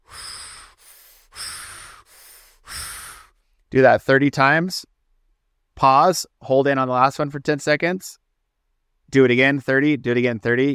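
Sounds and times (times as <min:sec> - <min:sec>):
deep rhythmic breathing from a breathwork exercise: 0:00.0 - 0:03.7
speech: 0:03.7 - 0:04.9, 0:05.8 - 0:08.2, 0:09.1 - 0:10.7.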